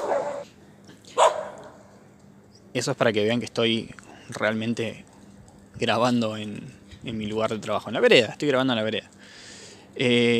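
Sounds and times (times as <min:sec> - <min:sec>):
dogs barking outdoors by a sidewalk: 0:00.0 - 0:00.5, 0:01.2 - 0:01.8
speech: 0:02.8 - 0:05.1, 0:05.8 - 0:09.0, 0:10.0 - 0:10.3.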